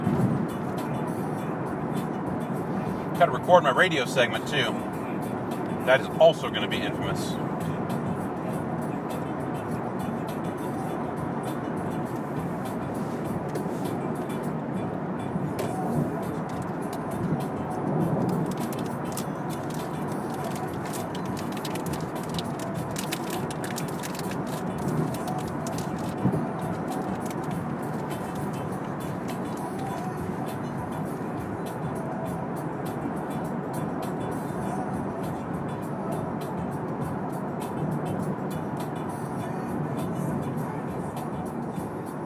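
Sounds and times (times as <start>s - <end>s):
road traffic rumble with hiss of passing vehicles: 0.0s - 42.2s
speech: 3.2s - 4.9s, 5.8s - 7.5s.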